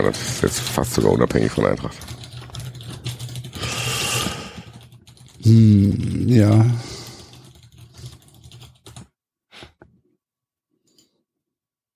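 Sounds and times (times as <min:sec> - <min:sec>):
speech: 0:00.0 - 0:02.2, 0:05.5 - 0:06.9
typing on a computer keyboard: 0:00.1 - 0:05.7, 0:06.4 - 0:09.2.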